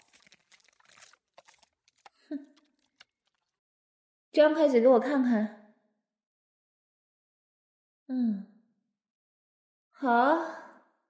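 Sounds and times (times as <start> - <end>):
person chewing food: 0.0 - 3.6
speech: 4.4 - 5.6, 10.0 - 10.6.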